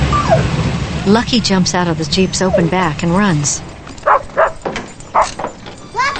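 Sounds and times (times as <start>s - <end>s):
dog yelping: 0.1s - 0.6s, 2.3s - 6.1s
speech: 1.1s - 3.7s
dog barking: 3.8s - 5.6s.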